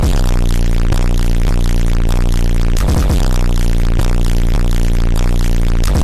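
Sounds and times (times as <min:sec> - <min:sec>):
distorted bass: 0:00.0 - 0:06.0.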